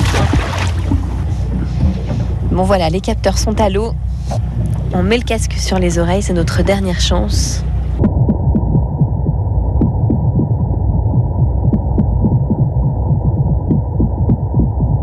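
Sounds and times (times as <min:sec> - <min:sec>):
brown meagre fish drumming underwater on hydrophone: 0:00.0 - 0:03.2, 0:08.0 - 0:15.0
speech: 0:02.6 - 0:08.1.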